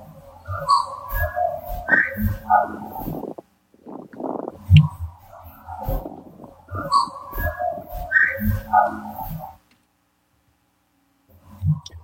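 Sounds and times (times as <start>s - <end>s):
recorded whistled vocal tones: 0.2s - 9.6s.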